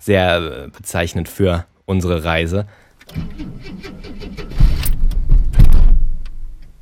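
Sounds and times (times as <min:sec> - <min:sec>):
speech: 0:00.0 - 0:04.5
car engine cranking and sputtering then stalling: 0:03.0 - 0:06.7.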